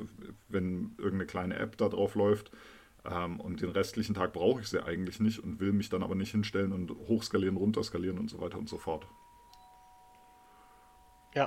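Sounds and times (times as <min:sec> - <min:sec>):
speech: 0:00.0 - 0:09.2
electronic doorbell ringing: 0:09.0 - 0:11.4.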